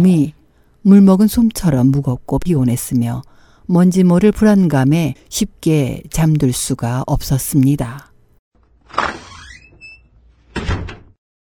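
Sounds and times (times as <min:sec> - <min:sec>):
speech: 0:00.0 - 0:08.1
small side door creaking open: 0:08.7 - 0:11.2.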